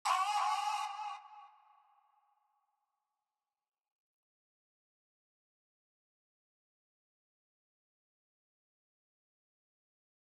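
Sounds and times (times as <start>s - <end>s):
beat starter vocal: 0.0s - 1.5s.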